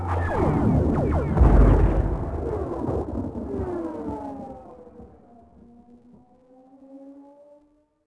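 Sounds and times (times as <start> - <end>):
distant squad battle: 0.1 - 5.2.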